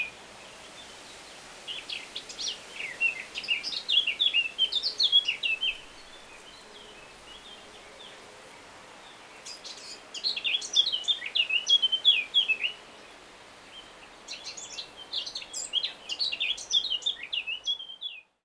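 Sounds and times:
Eurasian blackcap Sylvia atricapilla singing: 2.3s - 8.2s, 9.4s - 12.8s, 13.7s - 18.2s.

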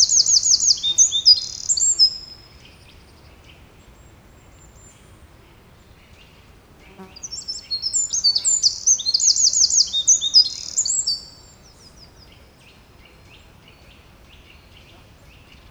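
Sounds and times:
Eurasian wren Troglodytes troglodytes singing: 0.0s - 3.0s, 7.0s - 15.7s.

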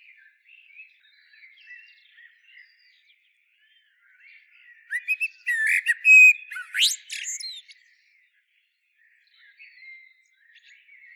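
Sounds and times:
common blackbird Turdus merula shrill squeaks and twittering notes: 4.9s - 7.8s
faint soft chatter: 4.9s - 7.8s.

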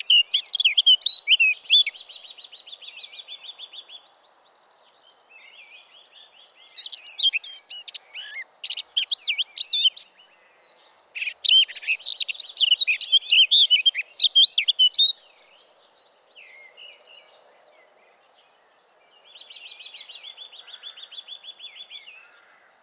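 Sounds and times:
Sylvia atricapilla Eurasian blackcap singing: 0.0s - 3.9s, 5.4s - 10.2s, 11.1s - 15.6s.

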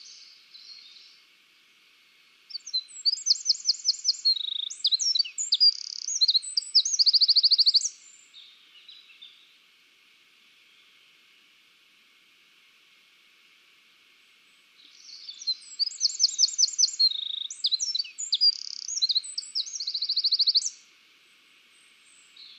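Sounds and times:
Eurasian wren Troglodytes troglodytes singing rapid trills: 2.5s - 9.4s, 14.8s - 20.8s.

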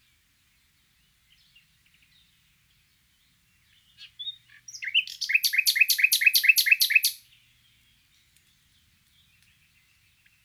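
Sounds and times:
Luscinia megarhynchos common nightingale singing: 3.7s - 8.0s.

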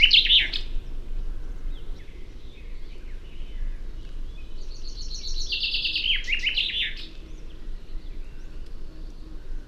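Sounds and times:
Fringilla coelebs common chaffinch singing: 0.0s - 9.6s.

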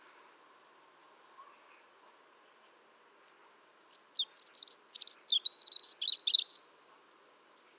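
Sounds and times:
European robin song: 3.9s - 6.7s.

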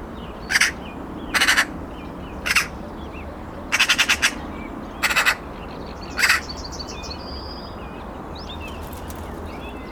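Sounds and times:
Eurasian magpie Pica pica giving harsh rattling chatter calls: 0.5s - 1.7s, 2.4s - 2.7s, 3.7s - 4.4s, 5.0s - 5.4s, 6.1s - 6.6s.

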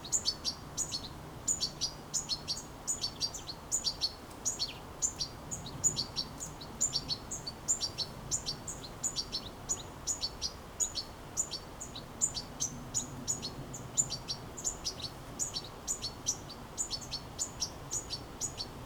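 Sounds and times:
European goldfinch Carduelis carduelis calling with high tinkling notes: 0.0s - 18.8s.

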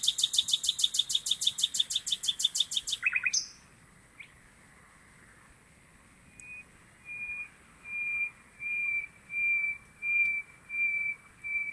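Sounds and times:
Common nightingale phrase of pure sustained whistled notes: 0.0s - 3.6s, 6.3s - 11.7s.

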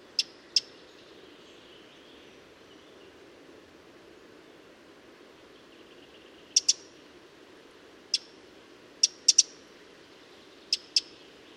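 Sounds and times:
soft low background hiss: 0.0s - 11.5s
Eurasian wren Troglodytes troglodytes giving sharp tick calls: 6.5s - 6.8s, 9.0s - 9.6s, 10.7s - 11.2s.

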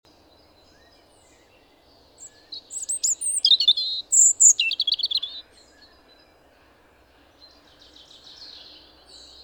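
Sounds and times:
European robin Erithacus rubecula singing: 0.1s - 6.3s, 7.4s - 9.4s.

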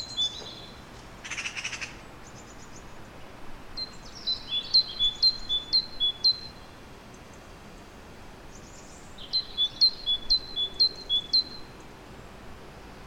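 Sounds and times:
great tit Parus major calling: 0.0s - 2.6s, 3.8s - 6.6s, 9.2s - 11.8s
faint background hiss: 0.0s - 13.0s.

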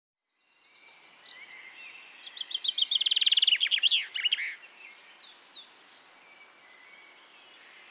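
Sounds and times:
common chaffinch Fringilla coelebs singing: 0.4s - 7.9s.

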